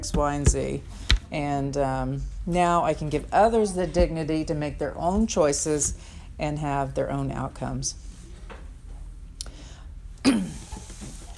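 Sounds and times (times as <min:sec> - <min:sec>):
speech: 0:00.0 - 0:08.1
person coughing: 0:10.2 - 0:10.8.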